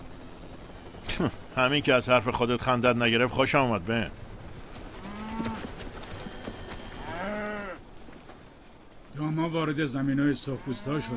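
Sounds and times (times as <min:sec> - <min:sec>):
outdoor noise: 0:00.0 - 0:11.1
speech: 0:01.2 - 0:04.2, 0:09.4 - 0:11.1
cattle mooing: 0:05.0 - 0:07.8, 0:10.3 - 0:11.1.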